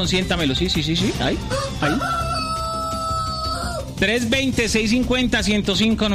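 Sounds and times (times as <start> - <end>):
speech: 0.0 - 2.3, 4.0 - 6.1
rooster crowing: 1.5 - 3.9.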